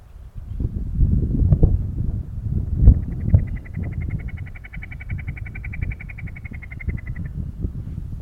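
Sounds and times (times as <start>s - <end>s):
low rumbling noise: 0.0s - 8.1s
snipe giving rapid even series of dry ticking notes: 2.9s - 7.3s.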